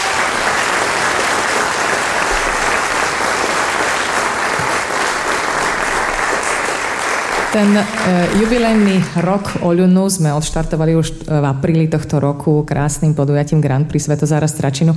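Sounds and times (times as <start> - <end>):
applause from a large audience: 0.0 - 9.6
speech: 7.6 - 14.9.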